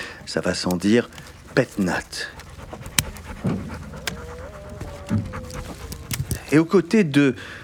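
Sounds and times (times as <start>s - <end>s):
young all-black dog panting: 0.0s - 7.6s
faint knocks and rustles: 0.2s - 6.6s
speech: 0.3s - 2.4s, 6.5s - 7.6s
young all-black dog whining softly: 1.1s - 6.9s.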